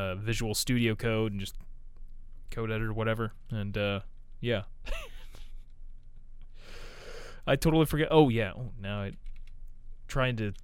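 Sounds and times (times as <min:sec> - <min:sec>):
speech: 0:00.0 - 0:01.7, 0:02.5 - 0:05.1, 0:07.4 - 0:09.3, 0:10.1 - 0:10.6
rapid typing on a computer keyboard: 0:09.0 - 0:09.6.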